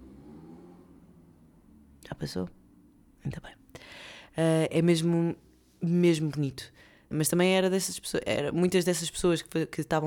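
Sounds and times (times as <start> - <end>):
motorcycle engine droning outside while passing by: 0.0 - 2.0
speech: 2.1 - 2.6, 3.2 - 3.6, 4.4 - 10.0.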